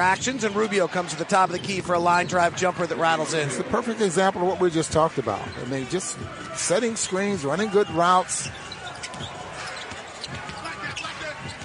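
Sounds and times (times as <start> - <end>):
speech: 0.0 - 9.4
crowd noise: 0.0 - 11.6
basketball dribbled on court during a game: 8.4 - 11.6.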